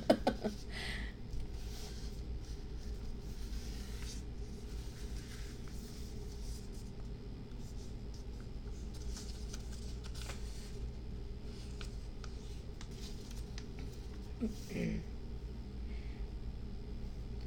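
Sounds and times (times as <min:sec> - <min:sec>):
steady low hum: 0:00.0 - 0:17.4
two layers of paper being folded and creased: 0:01.4 - 0:14.6.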